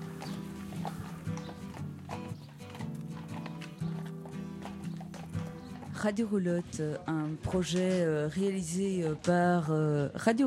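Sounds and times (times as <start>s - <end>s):
draft horses' hooves clip-clopping on a hard surface pulling a caravan: 0.0s - 10.1s
speech: 6.0s - 10.4s.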